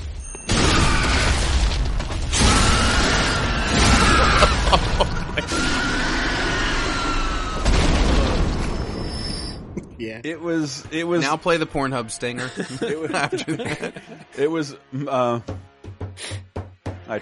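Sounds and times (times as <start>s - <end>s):
heavy booming impacts and crunching bursts of a video game visceral attack: 0.5s - 10.0s
sustained rumbling roar: 2.4s - 8.9s
laughter: 4.0s - 5.6s, 12.2s - 15.4s
speech: 10.0s - 16.3s, 17.1s - 17.2s.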